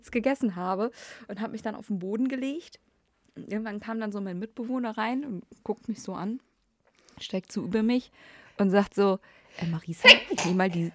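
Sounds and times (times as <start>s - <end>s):
speech: 0.0s - 6.5s, 7.2s - 10.9s
person sneezing: 10.0s - 10.6s.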